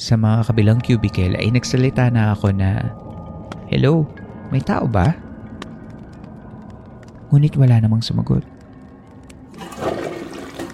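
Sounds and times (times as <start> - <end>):
speech: 0.0 - 5.2, 7.3 - 8.5
toilet flushing in a cubicle: 9.6 - 10.7.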